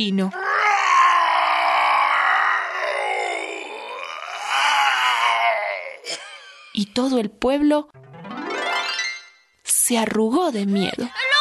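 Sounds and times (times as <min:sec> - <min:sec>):
speech: 0:00.0 - 0:00.4, 0:07.0 - 0:08.0, 0:09.9 - 0:11.3
person's voice imitating an angry ogre shouting and roaring: 0:00.3 - 0:06.1.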